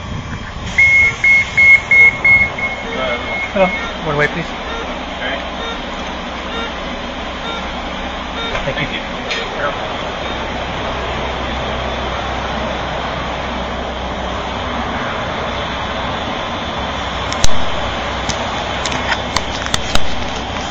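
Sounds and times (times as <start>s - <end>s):
moving bus engine drone: 0.0s - 20.6s
road rumble inside a moving bus: 0.0s - 20.6s
speech: 3.6s - 4.6s, 8.7s - 10.0s.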